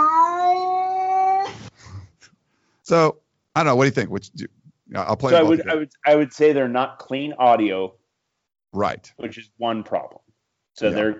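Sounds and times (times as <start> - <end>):
person imitating a cat meow: 0.0 - 1.5
speech: 2.9 - 8.0, 8.7 - 10.2, 10.8 - 11.1.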